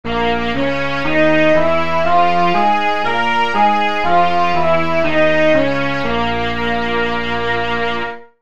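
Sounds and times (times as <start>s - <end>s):
B-flat blues scale played: 0.0s - 8.2s.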